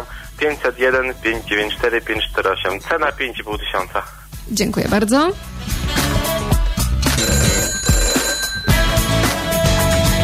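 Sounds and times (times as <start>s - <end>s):
dense rhythmic music bed: 0.0s - 10.2s
speech: 0.4s - 5.7s
telephone ringing as a radio station takes a call: 7.0s - 9.4s.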